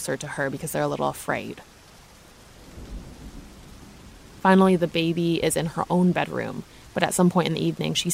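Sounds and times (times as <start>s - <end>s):
speech: 0.0s - 1.7s, 4.4s - 8.1s
steady rain of a thunderstorm: 0.0s - 8.1s
low rumble of thunder: 2.4s - 7.1s.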